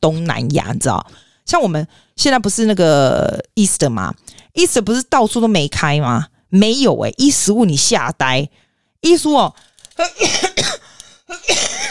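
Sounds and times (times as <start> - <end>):
speech: 0.0 - 11.8
harsh rasping coughs from a person with a lingering cough: 10.0 - 11.8.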